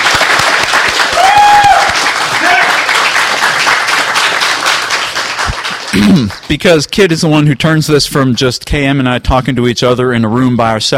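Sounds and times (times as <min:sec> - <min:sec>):
room full of people applauding loudly: 0:00.0 - 0:06.7
people whooping and cheering: 0:01.0 - 0:02.9
speech: 0:06.1 - 0:10.9.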